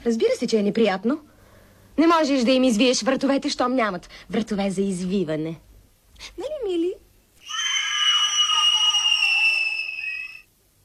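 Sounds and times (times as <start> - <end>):
speech: 0.0 - 1.3, 2.0 - 7.0
child screaming: 7.4 - 10.5.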